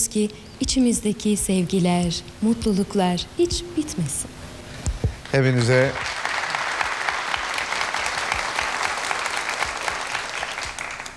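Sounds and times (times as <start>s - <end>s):
speech: 0.1s - 4.4s, 5.3s - 6.2s
large crowd applauding at the close of a holiday variety show: 5.3s - 11.1s.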